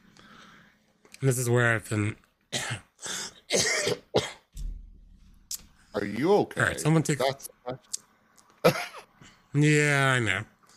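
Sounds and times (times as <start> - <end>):
speech: 1.2 - 2.8, 6.0 - 8.0, 8.6 - 8.9, 9.5 - 10.5
harsh coughs: 2.6 - 4.5, 8.6 - 9.1.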